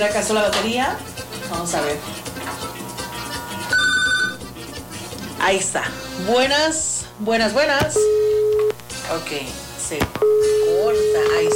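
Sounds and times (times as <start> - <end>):
speech: 0.0 - 2.8, 5.4 - 8.4, 9.1 - 11.5
steady hum: 0.0 - 11.5
telephone in a studio booth giving a short electronic ring: 3.5 - 4.5, 7.9 - 8.8, 10.2 - 11.5.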